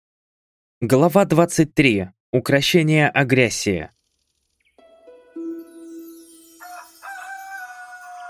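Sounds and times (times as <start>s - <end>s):
speech: 0.8s - 4.0s
rooster crowing: 6.5s - 8.2s.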